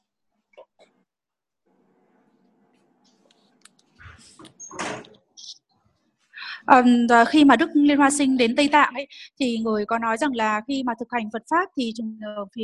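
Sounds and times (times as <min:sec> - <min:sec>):
door pushed shut with a heavy thud and rattle: 0:04.7 - 0:05.1
speech: 0:06.7 - 0:12.6.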